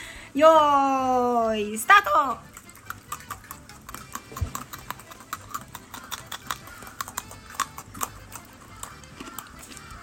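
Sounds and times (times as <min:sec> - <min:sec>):
speech: 0:00.4 - 0:02.5
crunching of Pocky sticks being bitten and chewed: 0:02.4 - 0:10.0.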